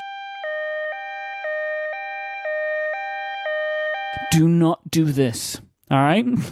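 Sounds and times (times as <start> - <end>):
loud two-tone electronic hee-haw siren: 0.0 - 4.6
speech: 4.1 - 6.4.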